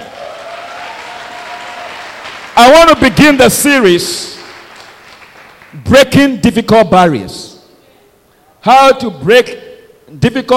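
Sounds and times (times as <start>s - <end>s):
audience applauding: 0.0s - 5.8s
speech: 2.6s - 4.3s, 5.9s - 7.5s, 8.6s - 10.5s.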